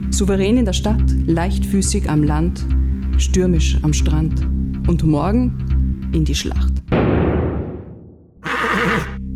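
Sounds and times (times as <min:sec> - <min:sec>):
speech: 0:00.2 - 0:07.2
horse whinnying: 0:08.4 - 0:09.2.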